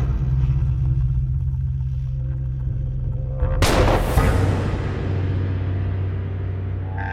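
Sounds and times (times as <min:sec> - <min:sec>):
steady low rumble: 0:00.0 - 0:07.1
gunshot in a duel at the edge of a plateau: 0:03.6 - 0:04.8.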